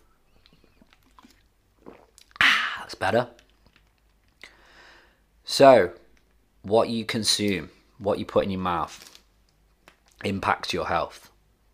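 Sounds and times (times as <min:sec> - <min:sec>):
person sipping water: 0:00.4 - 0:04.7
gulp of water: 0:00.5 - 0:03.0
speech: 0:02.9 - 0:03.4, 0:05.6 - 0:06.0, 0:06.6 - 0:09.1, 0:10.2 - 0:11.3.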